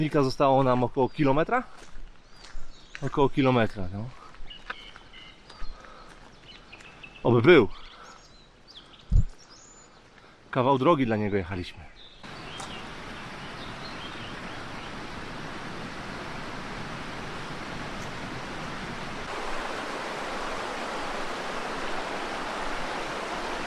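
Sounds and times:
speech: 0.0s - 2.0s, 3.0s - 4.2s, 7.2s - 7.8s, 10.5s - 11.9s
bird chirp: 4.4s - 10.2s, 11.9s - 15.2s
mountain stream rushing: 12.2s - 23.6s.

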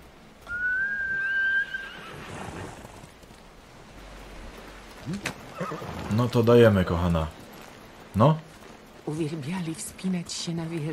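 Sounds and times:
horse neighing: 0.5s - 3.1s, 5.1s - 6.1s
speech: 5.1s - 7.4s, 8.2s - 8.5s, 9.1s - 10.9s.

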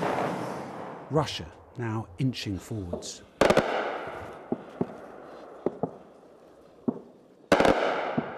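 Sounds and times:
gunfire shooting at a drone: 0.0s - 1.1s, 3.4s - 6.1s, 6.8s - 8.3s
speech: 1.1s - 3.3s.

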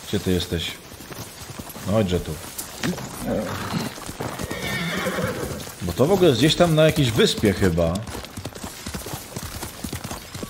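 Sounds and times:
horse hoof beats: 0.0s - 10.4s
speech: 0.1s - 0.9s, 1.8s - 4.0s, 5.8s - 8.2s
horse neighing: 2.8s - 6.0s.

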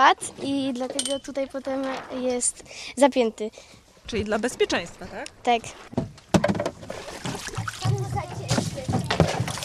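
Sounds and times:
speech: 0.0s - 6.1s
water sloshing and splashing inside a small sailboat hull as water is taken out: 5.5s - 9.6s.

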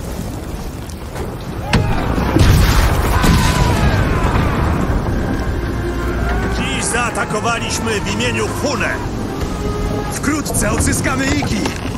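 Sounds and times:
heavy rumbling: 0.0s - 11.9s
black powder explosion in a video game: 1.5s - 5.8s
speech: 7.3s - 9.2s, 10.1s - 11.8s.

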